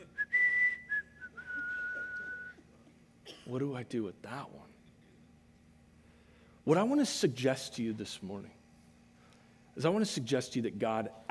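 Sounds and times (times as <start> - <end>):
person whistling a short casual tune: 0.0 - 2.6
speech: 3.5 - 4.8, 6.6 - 8.6, 9.8 - 11.2.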